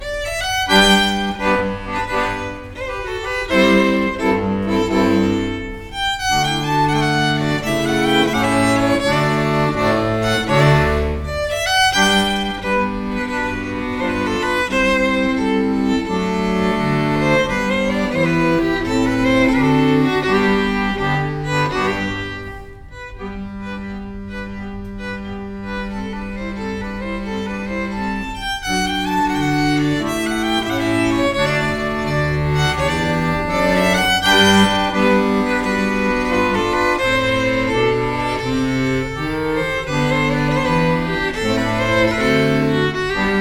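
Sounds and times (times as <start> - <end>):
accordion: 0.0 - 43.4
fiddle playing a wedding march: 0.0 - 43.4.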